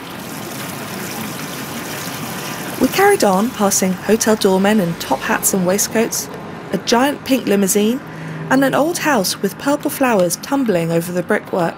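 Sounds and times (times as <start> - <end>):
water trickling and splashing under plane trees in London: 0.0 - 6.7
speech: 2.8 - 11.7.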